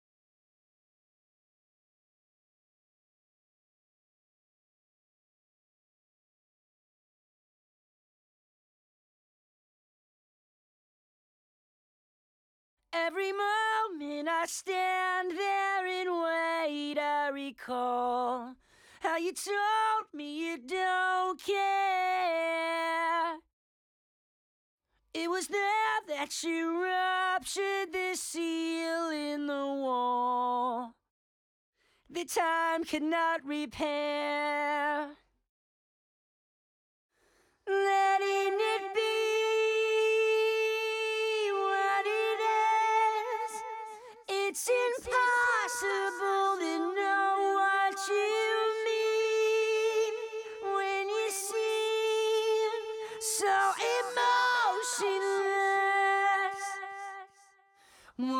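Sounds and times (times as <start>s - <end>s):
main vocals: 13.0s - 23.3s, 25.2s - 30.9s, 32.1s - 35.2s, 37.7s - 57.4s, 58.1s - 58.3s.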